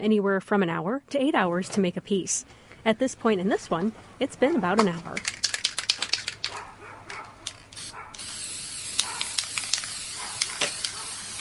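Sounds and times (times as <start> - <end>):
speech: 0.0 - 5.4
spray paint can clicks and rattles: 4.8 - 11.3
spray paint can spraying onto a frame: 5.2 - 6.5, 7.5 - 11.3.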